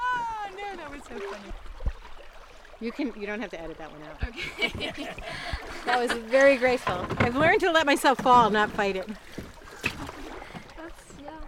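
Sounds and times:
river water sloshing and splashing around a canoe hull: 0:00.0 - 0:11.4
speech: 0:01.0 - 0:01.7, 0:02.8 - 0:09.4
laughter: 0:04.2 - 0:06.4
sharp knock on canoe: 0:04.7 - 0:11.3.

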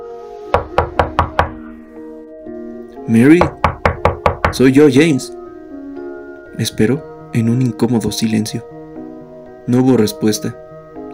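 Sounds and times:
knuckles knocking on a wooden door: 0:00.6 - 0:01.6, 0:03.4 - 0:04.6
speech: 0:03.1 - 0:03.6, 0:04.5 - 0:05.4, 0:06.6 - 0:08.8, 0:09.7 - 0:10.6.

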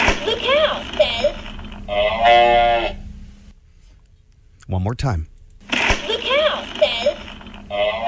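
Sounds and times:
faint steady low hum: 0:00.0 - 0:08.0
talking toy playing an electronic cow moo: 0:01.9 - 0:03.0, 0:07.7 - 0:08.0
speech: 0:04.7 - 0:05.3.

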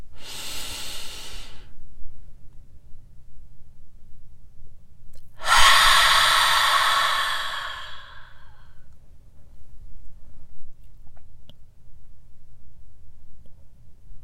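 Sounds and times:
deep breath exhaled through an open mouth during a meditation: 0:00.2 - 0:01.8, 0:05.4 - 0:08.7.

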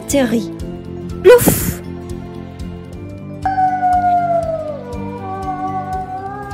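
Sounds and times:
steady rhythmic music: 0:00.0 - 0:06.5
speech: 0:00.1 - 0:00.6, 0:01.2 - 0:01.8
burned wolf howling in pain: 0:03.4 - 0:06.5.

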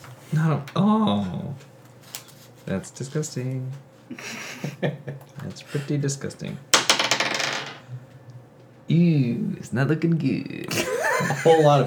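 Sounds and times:
speech: 0:00.3 - 0:01.7, 0:02.7 - 0:06.7, 0:08.9 - 0:11.8
laughter: 0:04.1 - 0:05.3, 0:10.7 - 0:11.8
dice rolled for an attack clattering across a hard table: 0:06.8 - 0:07.8.

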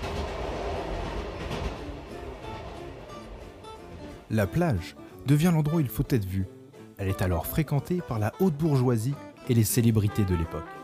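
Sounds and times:
faint rhythmic clatter of train wheels over track joints: 0:00.0 - 0:05.0
train rumbling along rails from Gare du Nord to L'Isle-Adam: 0:00.0 - 0:05.6
speech: 0:04.3 - 0:10.8.

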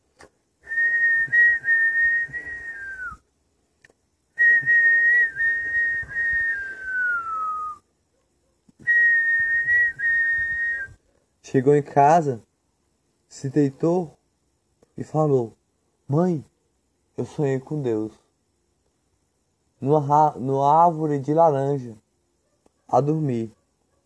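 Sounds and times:
person whistling imitating birdsong: 0:00.6 - 0:03.2, 0:04.4 - 0:07.8, 0:08.8 - 0:11.0
speech: 0:11.5 - 0:12.5, 0:13.4 - 0:14.2, 0:15.0 - 0:16.5, 0:17.2 - 0:18.2, 0:19.8 - 0:22.0, 0:22.9 - 0:23.6.

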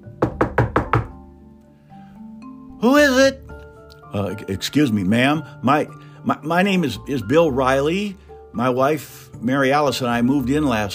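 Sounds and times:
firm knocks on a door: 0:00.1 - 0:01.2
speech: 0:02.8 - 0:03.4, 0:04.1 - 0:10.9.

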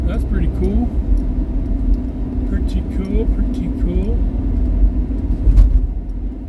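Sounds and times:
road traffic rumble: 0:00.0 - 0:06.4.

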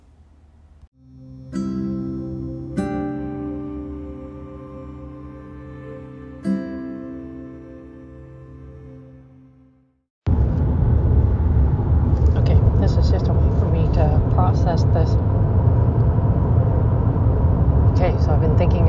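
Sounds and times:
sustained musical tones: 0:01.0 - 0:10.0
car cabin rumble while driving: 0:10.3 - 0:18.8.

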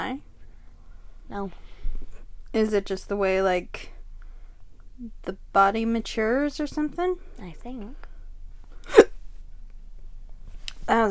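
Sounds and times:
speech: 0:00.0 - 0:00.3, 0:01.3 - 0:01.7, 0:02.5 - 0:03.9, 0:05.0 - 0:08.1, 0:10.9 - 0:11.0
hiccup: 0:08.8 - 0:09.2.

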